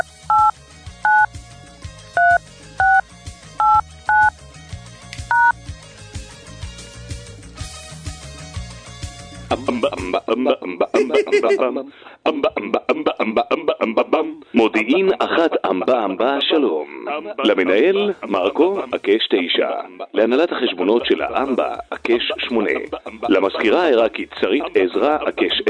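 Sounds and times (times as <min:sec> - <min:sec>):
touch-tone keypad beeps dialing a phone line: 0:00.0 - 0:00.5, 0:01.1 - 0:01.3, 0:02.2 - 0:03.0, 0:03.6 - 0:04.3, 0:05.3 - 0:05.5
laughter: 0:09.5 - 0:14.2, 0:21.9 - 0:23.6
speech: 0:10.1 - 0:25.6.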